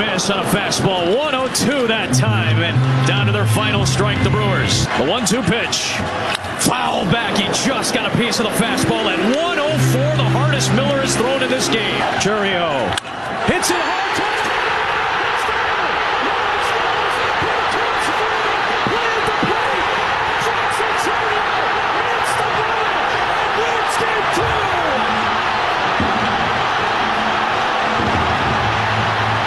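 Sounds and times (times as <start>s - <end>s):
speech: 0.0s - 14.4s
huge stadium crowd cheering: 0.0s - 29.4s.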